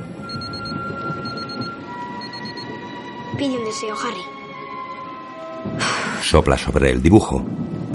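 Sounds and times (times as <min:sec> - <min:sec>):
wristwatch alarm beeping: 0:00.3 - 0:02.7
speech: 0:03.4 - 0:04.3, 0:06.3 - 0:07.8.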